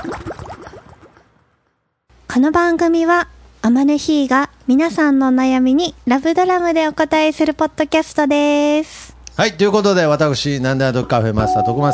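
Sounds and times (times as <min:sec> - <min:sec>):
underwater bubbling of many small rising bubbles: 0:00.0 - 0:01.5
speech: 0:02.4 - 0:11.9.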